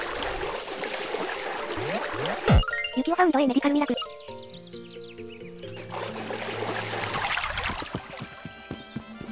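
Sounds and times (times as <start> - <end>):
river water flowing: 0.0 - 2.5, 5.8 - 8.5
speech: 3.0 - 4.1.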